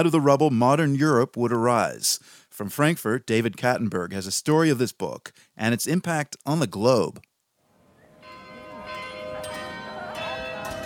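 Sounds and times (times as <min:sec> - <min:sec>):
speech: 0:00.0 - 0:07.3
church bells ringing in a steady peal: 0:08.2 - 0:10.8.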